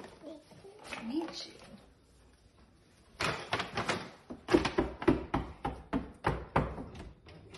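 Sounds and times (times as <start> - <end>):
speech: 1.0 - 1.6
firm knocks on a door: 4.5 - 7.1.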